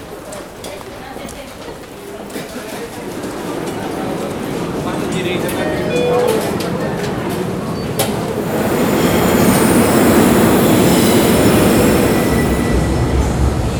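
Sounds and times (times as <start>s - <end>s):
metro train running in São Paulo, Brazil: 0.0s - 13.7s
metro train wheels squealing: 7.8s - 13.7s.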